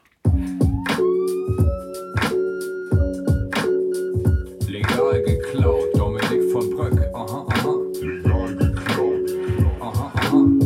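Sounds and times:
loud regular pounding beat: 0:00.2 - 0:10.6
synthetic siren sound effect in a music track: 0:00.6 - 0:05.8.

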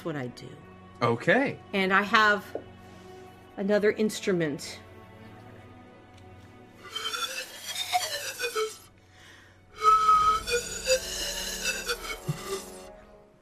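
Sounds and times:
speech: 0:00.0 - 0:02.7, 0:03.6 - 0:04.8
person whistling a bright warbling tune: 0:06.8 - 0:08.9, 0:09.8 - 0:12.9.

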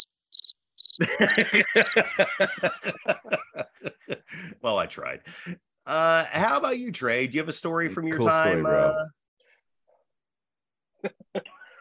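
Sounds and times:
crickets chirping: 0:00.0 - 0:02.0
laughter: 0:01.0 - 0:05.6
speech: 0:01.0 - 0:09.2, 0:11.0 - 0:11.6.

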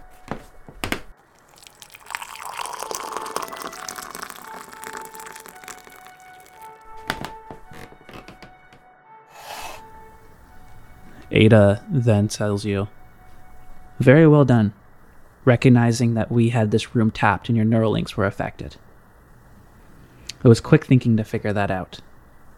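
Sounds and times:
liquid pouring from a pot: 0:01.2 - 0:06.8
crockery tapping and clinking: 0:01.6 - 0:06.6
speech: 0:11.4 - 0:13.0, 0:14.0 - 0:14.8, 0:15.4 - 0:18.8, 0:20.4 - 0:22.1.

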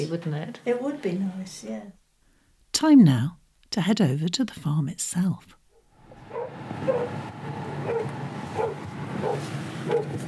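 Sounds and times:
speech: 0:00.0 - 0:02.0, 0:02.7 - 0:05.6
dogs barking excitedly in greeting: 0:05.7 - 0:10.2.

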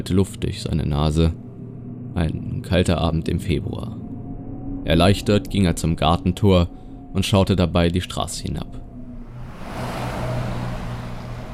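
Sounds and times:
speech: 0:00.0 - 0:01.4, 0:02.1 - 0:04.0, 0:04.8 - 0:08.8
road noise: 0:08.8 - 0:11.5
bus engine rumbling as it pulls away from a stop: 0:09.2 - 0:11.5.

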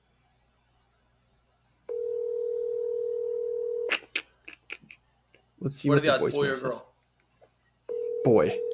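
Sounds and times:
mobile phone ringing tone on speakerphone: 0:01.9 - 0:03.9, 0:07.9 - 0:08.7
speech: 0:05.6 - 0:06.9, 0:08.4 - 0:08.6.

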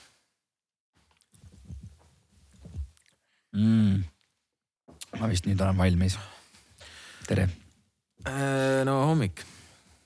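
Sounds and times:
sipping and gulping water: 0:01.0 - 0:03.3
wet mouth and throat sounds: 0:01.1 - 0:03.2
speech: 0:05.2 - 0:06.4, 0:07.3 - 0:07.6, 0:08.3 - 0:09.6.

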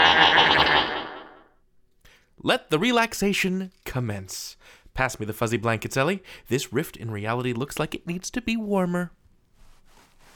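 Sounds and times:
goat bleating with heavy echo: 0:00.0 - 0:01.4
speech: 0:02.4 - 0:09.2.

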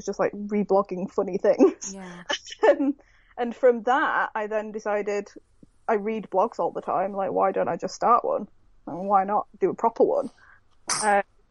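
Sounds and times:
speech: 0:00.0 - 0:10.4, 0:11.0 - 0:11.3
person sneezing: 0:01.9 - 0:02.2, 0:10.9 - 0:11.1.

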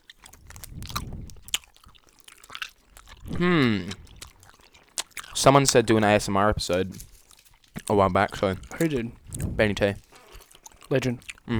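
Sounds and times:
chewing a wrapped cinnamon-flavoured treat: 0:00.0 - 0:11.5
person humming: 0:03.3 - 0:04.0
speech: 0:03.3 - 0:04.0, 0:05.4 - 0:07.1, 0:07.9 - 0:10.0, 0:10.9 - 0:11.5.

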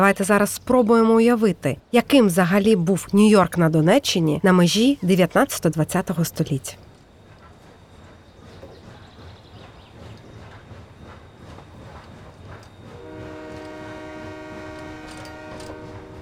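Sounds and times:
speech: 0:00.0 - 0:06.8
train rumbling past with clattering wheels: 0:05.2 - 0:16.1
sustained multi-tone train horn: 0:12.9 - 0:16.1.

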